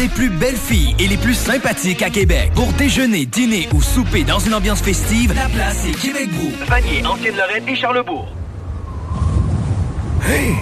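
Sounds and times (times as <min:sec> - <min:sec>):
speech: 0:00.0 - 0:08.4, 0:10.2 - 0:10.6
strong wind gust roaring with a heavy low rumble: 0:08.3 - 0:10.6
thin whistling tone: 0:08.8 - 0:09.5.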